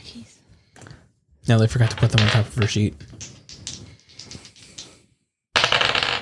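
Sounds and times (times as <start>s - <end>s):
speech: 1.5s - 3.3s
dice rattling and clattering across a surface: 1.6s - 5.0s, 5.6s - 6.2s.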